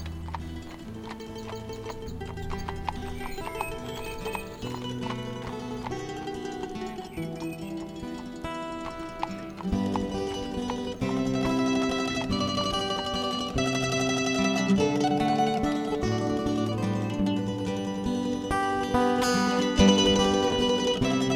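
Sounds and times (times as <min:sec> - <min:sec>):
dense continuous tonal backdrop: 0:00.0 - 0:16.6
horse hooves clip-clopping: 0:00.0 - 0:21.3.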